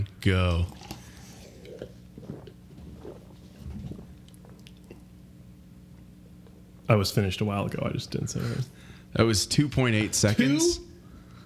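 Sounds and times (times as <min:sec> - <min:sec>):
speech: 0:00.2 - 0:00.8, 0:06.9 - 0:10.9
person drinking quickly with deep bassy gulps: 0:00.5 - 0:06.8.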